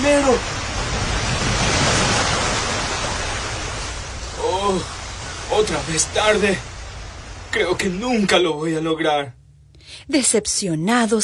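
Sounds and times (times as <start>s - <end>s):
water churning and swirling in a pool: 0.0s - 8.4s
speech: 0.3s - 0.6s, 5.6s - 6.7s, 7.5s - 11.2s.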